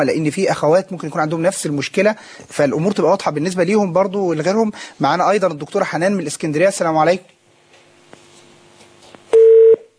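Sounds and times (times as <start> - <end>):
speech: 0.0 - 7.4
telephone line tone after a disconnected call: 9.3 - 9.9.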